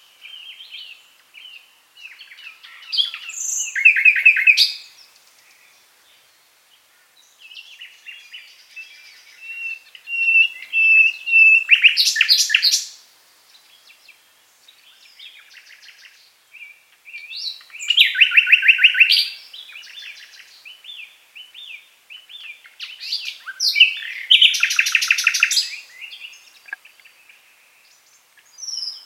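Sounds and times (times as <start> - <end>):
common nightingale Luscinia megarhynchos singing varied phrases: 0.0 - 6.4, 7.1 - 29.0.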